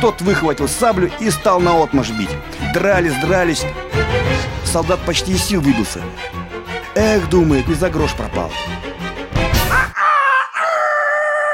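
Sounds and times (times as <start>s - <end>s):
speech: 0.0s - 6.4s, 7.0s - 8.8s
roosters crowing: 9.7s - 11.5s.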